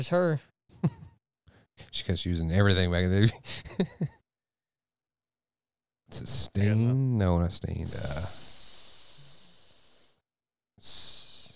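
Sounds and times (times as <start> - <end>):
speech: 0.0 - 1.0, 1.8 - 4.2, 6.1 - 8.5
person imitating a snake with a hiss through the teeth: 7.9 - 10.2, 10.8 - 11.5.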